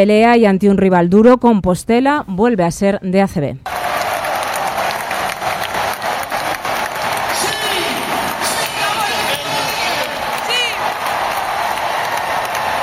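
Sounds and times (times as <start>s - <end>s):
speech: 0.0s - 3.7s
crowd clapping in an indoor basketball arena: 3.7s - 12.8s
people shouting in an indoor basketball arena: 3.7s - 12.8s.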